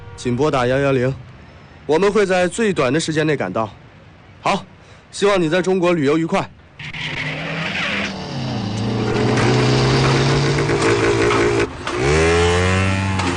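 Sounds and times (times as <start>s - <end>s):
speech: 0.2s - 1.3s, 1.9s - 3.8s, 4.4s - 6.6s
motorcycle engine revving and riding away: 6.8s - 13.3s.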